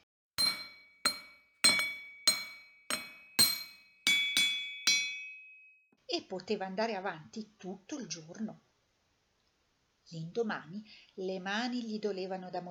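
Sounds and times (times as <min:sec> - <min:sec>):
hammer striking glowing hot iron on a massive anvil at an old forge: 0:00.4 - 0:05.7
speech: 0:06.1 - 0:08.7, 0:10.1 - 0:12.6.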